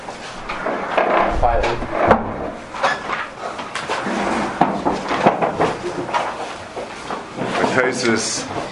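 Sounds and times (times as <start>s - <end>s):
rustling and handling noises: 0.0s - 8.6s
wooden door shutting with a dull thud: 0.6s - 3.4s
speech: 8.0s - 8.6s.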